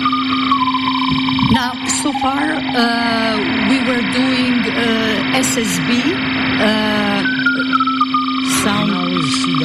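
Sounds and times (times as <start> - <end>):
Morse code beeps from an amateur radio: 0.0 - 2.8, 7.0 - 9.6
electrical hum and hiss: 0.0 - 9.6
speech: 1.5 - 7.3, 8.6 - 9.6.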